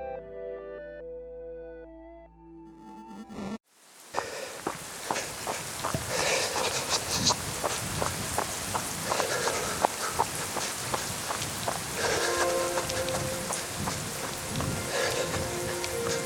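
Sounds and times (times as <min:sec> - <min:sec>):
steady rain: 0:03.7 - 0:16.2
person running in light thin-soled shoes splashing through puddles and potholes: 0:04.2 - 0:16.2.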